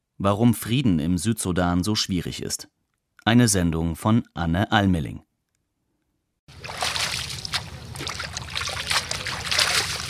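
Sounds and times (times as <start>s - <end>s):
speech: 0.2s - 5.3s
leaves being swished and rinsed in river water: 6.5s - 10.0s.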